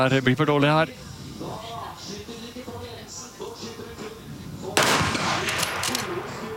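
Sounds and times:
speech: 0:00.0 - 0:02.2
rifle shot in a target shooting competition: 0:04.8 - 0:06.5.

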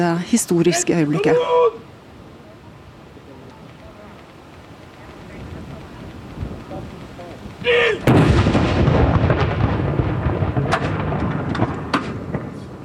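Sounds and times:
speech: 0:00.0 - 0:01.9
murmuring outdoor crowd: 0:00.0 - 0:08.1
cannon fired in mourning gun salute: 0:08.0 - 0:12.8.

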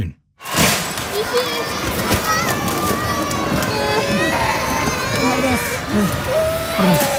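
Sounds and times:
items falling off shelves in a retail warehouse during an earthquake: 0:00.4 - 0:03.9
agitated voices: 0:01.2 - 0:07.1
children crying: 0:01.2 - 0:07.1.

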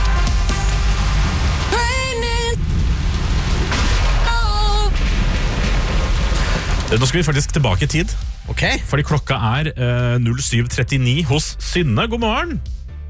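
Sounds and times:
heavy steady rain: 0:00.0 - 0:09.0
deep stormy thunder rumble: 0:00.3 - 0:09.4
speech: 0:06.9 - 0:12.8.

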